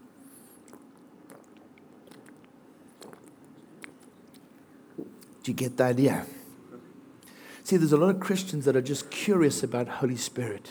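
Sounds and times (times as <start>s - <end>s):
person gulping down a drink: 0.6s - 5.4s
speech: 5.5s - 6.4s, 7.7s - 10.6s.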